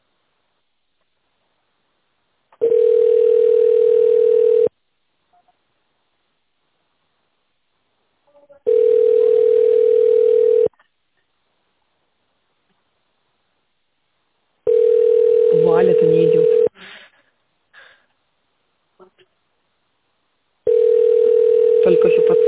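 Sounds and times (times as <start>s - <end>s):
ringback tone of an unanswered call to a construction company line: 2.6s - 4.7s, 8.7s - 10.7s, 14.7s - 16.7s, 20.7s - 22.4s.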